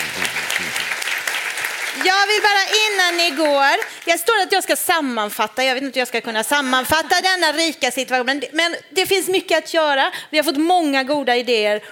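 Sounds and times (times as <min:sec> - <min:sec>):
audience applause in a room: 0:00.0 - 0:04.1
speech: 0:02.0 - 0:11.9.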